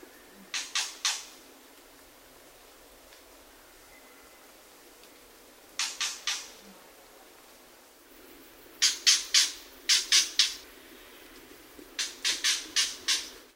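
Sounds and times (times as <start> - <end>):
faint hiss: 0.0 - 13.5
Shama songbird giving harsh clucking calls: 0.1 - 1.4, 5.8 - 6.7, 8.8 - 10.7, 12.0 - 13.5.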